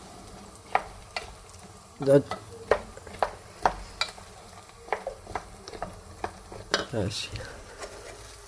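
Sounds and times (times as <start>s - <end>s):
food sizzling in a pan: 0.0s - 8.4s
speech: 2.0s - 2.5s, 6.9s - 7.6s.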